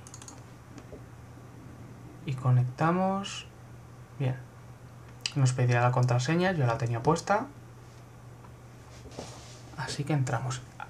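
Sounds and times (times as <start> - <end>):
mouse double-clicking on a computer to connect to a server: 0.0 - 1.0
steady low hum: 0.0 - 10.8
speech: 2.3 - 3.5, 4.2 - 4.5, 5.3 - 7.6, 9.2 - 10.7.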